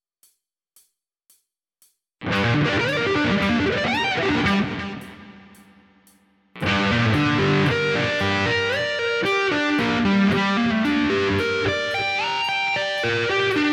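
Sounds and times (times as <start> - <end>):
guitar sweep picking: 2.2 - 5.8, 6.6 - 13.7.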